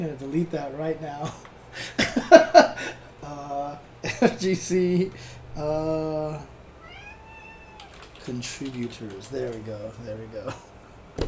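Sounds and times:
speech: 0:00.0 - 0:06.5, 0:08.2 - 0:11.2
quiet hum: 0:00.0 - 0:11.2
laughter: 0:01.2 - 0:03.1, 0:04.0 - 0:04.6
person's voice imitating a cat meowing: 0:06.9 - 0:08.0.

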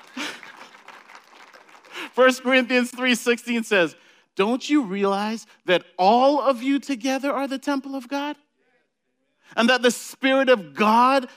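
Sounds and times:
audience applause: 0:00.0 - 0:02.1
speech: 0:02.2 - 0:08.4, 0:09.5 - 0:11.3.

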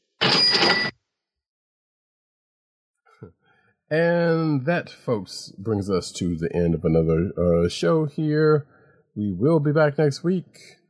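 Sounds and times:
cash register bright chime: 0:00.2 - 0:00.9
speech: 0:03.2 - 0:10.8.

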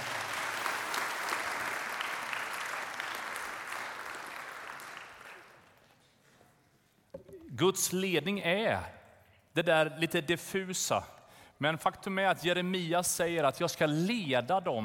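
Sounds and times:
crowd applause: 0:00.0 - 0:06.1
speech: 0:07.6 - 0:09.0, 0:09.6 - 0:14.8.

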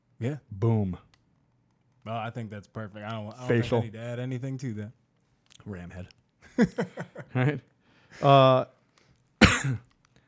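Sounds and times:
speech: 0:00.2 - 0:01.1, 0:02.0 - 0:08.8, 0:09.6 - 0:09.9
laughter: 0:06.4 - 0:08.3
person coughing into the microphone: 0:09.4 - 0:09.9.

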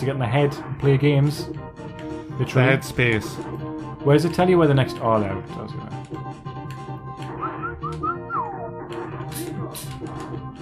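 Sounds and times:
speech: 0:00.0 - 0:06.6
person whistling a short lilting tune: 0:07.4 - 0:08.6.

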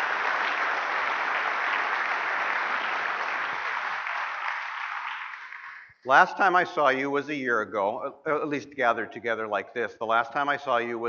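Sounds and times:
crowd applauding: 0:00.0 - 0:06.1
speech: 0:06.0 - 0:11.0.

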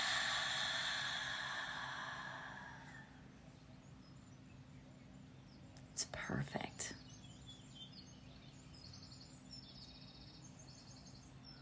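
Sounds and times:
long slow breath in through the nose during a guided breathing exercise: 0:00.0 - 0:03.2
speech: 0:06.0 - 0:07.0.

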